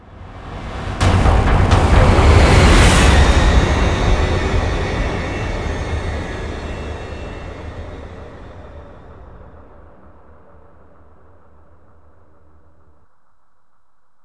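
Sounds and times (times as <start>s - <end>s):
reveal music stinger: 0.7s - 9.0s.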